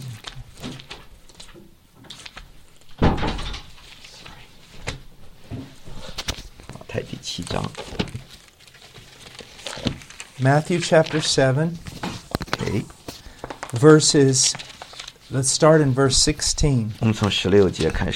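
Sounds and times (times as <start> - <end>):
shuffling room noise: 0.0 - 18.1
door swinging shut: 3.0 - 3.8
speech: 7.0 - 8.0, 10.4 - 11.9, 12.6 - 13.0, 13.7 - 14.7, 15.3 - 18.1.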